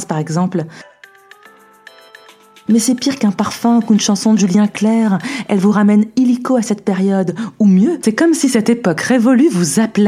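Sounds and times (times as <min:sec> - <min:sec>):
speech: 0:00.0 - 0:00.9, 0:02.7 - 0:10.0
melodic phone ringtone of bright electronic tones: 0:00.8 - 0:06.5.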